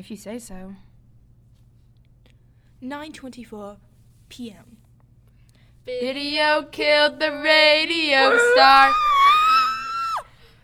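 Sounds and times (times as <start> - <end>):
speech: 0.0 - 0.9, 2.8 - 4.8, 5.8 - 9.1
high shrill scream: 8.3 - 10.3.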